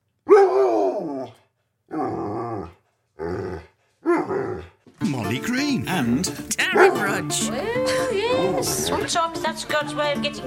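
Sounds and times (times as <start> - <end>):
dog on a bed groaning and grumbling: 0.3 - 4.8, 6.7 - 9.1
speech: 5.3 - 10.4.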